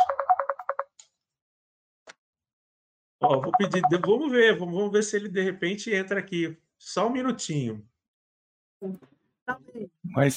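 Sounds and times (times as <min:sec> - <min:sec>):
mobile phone ringtone announcing an incoming call: 0:03.2 - 0:04.2
speech: 0:03.3 - 0:07.9, 0:08.8 - 0:10.3.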